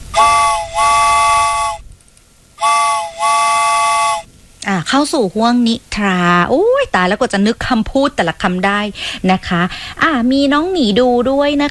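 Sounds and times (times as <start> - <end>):
loud chord-like train whistle blasts: 0.0 - 1.8, 2.6 - 4.3
speech: 4.7 - 11.6.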